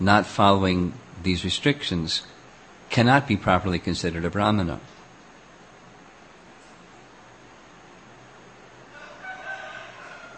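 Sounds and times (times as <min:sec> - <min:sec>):
speech: 0:00.0 - 0:05.0
faint hiss: 0:00.0 - 0:10.3
rooster crowing: 0:08.8 - 0:10.3.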